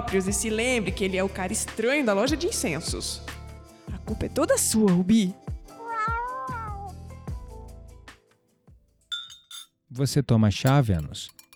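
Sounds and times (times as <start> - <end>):
speech: 0.0 - 3.4, 4.1 - 5.4, 10.0 - 11.4
cat meowing: 5.7 - 7.0
bright glassy clinks: 9.1 - 9.8, 10.7 - 11.5.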